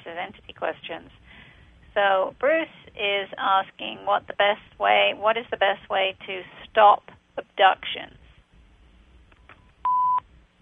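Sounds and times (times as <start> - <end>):
speech: 0.2 - 1.2, 2.0 - 8.2
electronic beep: 9.8 - 10.2.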